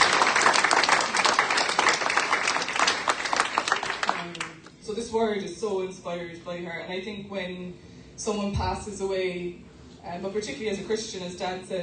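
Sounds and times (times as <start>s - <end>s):
room full of people applauding: 0.0s - 4.6s
speech: 5.1s - 11.8s.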